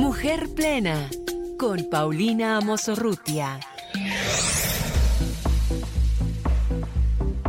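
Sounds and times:
speech: 0:00.2 - 0:04.1
bright synth stabs in a radio intro jingle: 0:03.6 - 0:07.3
rising whoosh in a radio intro jingle: 0:03.7 - 0:07.4.

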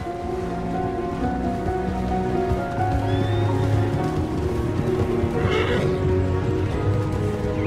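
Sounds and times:
rain-like noise: 0:00.0 - 0:07.6
horse neighing and whinnying: 0:05.3 - 0:06.3.

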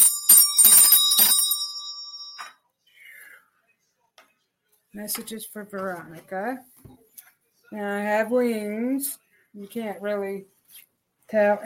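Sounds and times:
small bell dinging: 0:00.0 - 0:02.6
speech: 0:05.0 - 0:07.0, 0:07.7 - 0:11.6.

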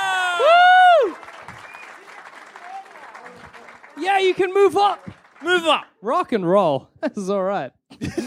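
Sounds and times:
audience applauding: 0:00.0 - 0:05.9
crowd whistles: 0:01.0 - 0:02.2
speech: 0:04.0 - 0:08.2.

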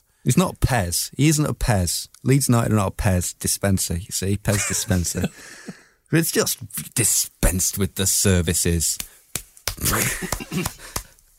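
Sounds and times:
speech: 0:00.2 - 0:09.2, 0:09.8 - 0:11.0
laughter: 0:04.5 - 0:05.8, 0:09.8 - 0:11.0
man's hands rubbed together as if washing: 0:07.5 - 0:11.3
palms slapping: 0:08.6 - 0:11.3.

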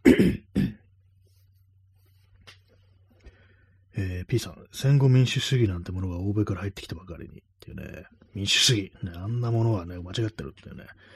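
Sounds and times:
throat clearing: 0:00.0 - 0:00.9
speech: 0:00.2 - 0:00.4, 0:04.0 - 0:11.1.

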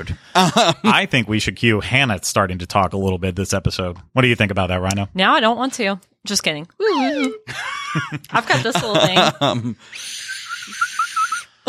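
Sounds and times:
laughter: 0:00.0 - 0:02.0, 0:07.0 - 0:11.6
speech: 0:00.0 - 0:10.8
breathy slide whistle playing a long airy note: 0:10.5 - 0:11.5.

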